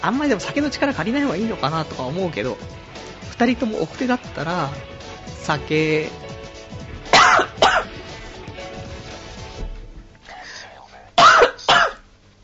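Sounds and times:
speech: 0.0s - 6.3s
harsh coughing fit after choking: 7.1s - 7.9s, 11.2s - 12.0s
soft breathing: 10.2s - 11.2s.

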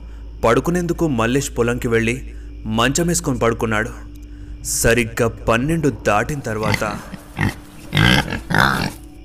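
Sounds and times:
speech: 0.4s - 7.6s
wild boar grunting in a farm field at night: 6.1s - 9.1s.

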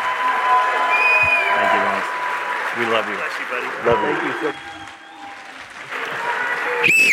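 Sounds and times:
large indoor crowd applauding: 0.0s - 7.1s
sharp whistles: 0.9s - 1.5s, 6.8s - 7.1s
speech: 2.8s - 4.8s, 6.8s - 7.1s.

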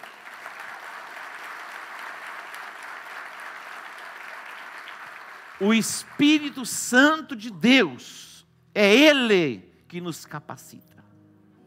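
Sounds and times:
congregation applauding: 0.0s - 7.4s
speech: 5.6s - 11.0s.

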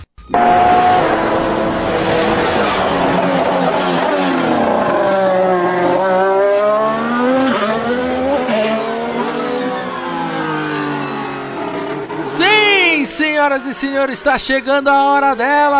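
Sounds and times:
speech: 0.3s - 0.6s, 13.6s - 15.7s
racing car engines roaring as the cars speed past: 0.4s - 12.6s.

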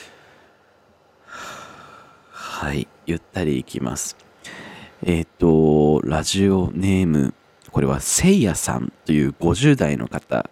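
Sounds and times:
person taking a slow deep breath to calm down: 0.0s - 2.6s, 4.4s - 5.0s
speech: 2.6s - 10.4s.

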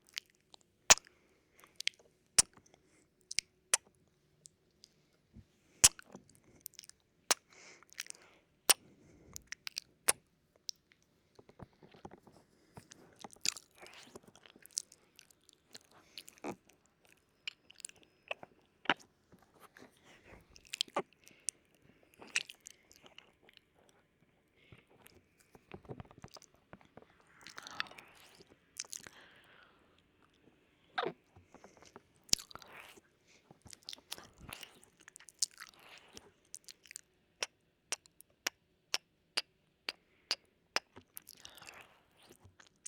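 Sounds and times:
nibbling bites with sharp clicks and crunches: 0.0s - 2.7s, 5.8s - 8.8s, 12.9s - 19.0s, 27.4s - 29.1s, 31.0s - 33.0s, 33.7s - 40.0s, 40.8s - 42.8s
wet mouth sounds: 0.0s - 5.0s, 5.8s - 8.8s, 13.2s - 19.0s, 27.4s - 29.2s, 31.0s - 33.0s, 33.6s - 42.8s
softer smacking and breathy chewing: 5.8s - 24.0s, 24.6s - 38.2s, 39.9s - 42.8s.

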